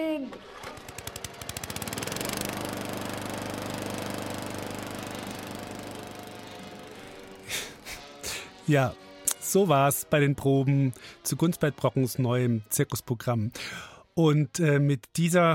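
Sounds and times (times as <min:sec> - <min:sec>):
speech: 0:00.0 - 0:00.6, 0:08.7 - 0:15.5
lawn mower engine starting and running: 0:00.3 - 0:08.6.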